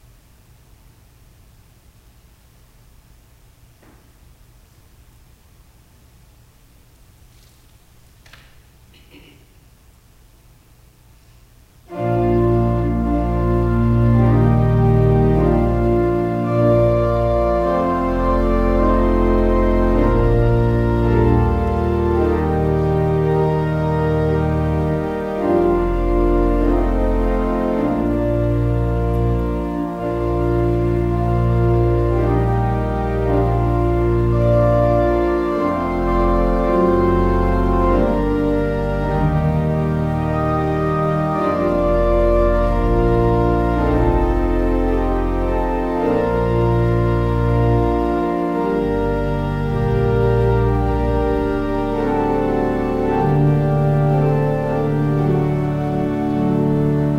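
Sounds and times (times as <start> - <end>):
processional music: 11.9 - 57.1.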